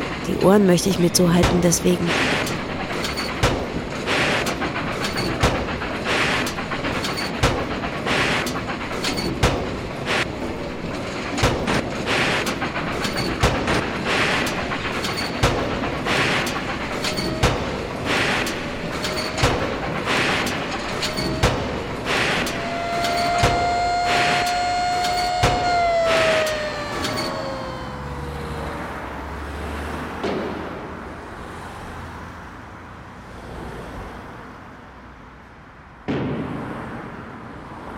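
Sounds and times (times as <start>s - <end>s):
speech: 0.3s - 2.5s
industrial clatter and rumble from locomotive factory buildings: 1.3s - 31.3s
dense mechanical roar of a locomotive factory: 20.5s - 29.8s.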